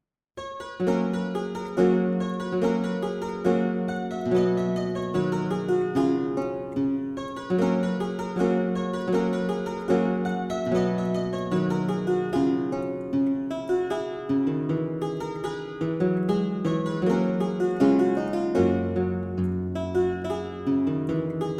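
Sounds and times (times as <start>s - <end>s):
German lute-harpsichord: 0.4s - 21.5s.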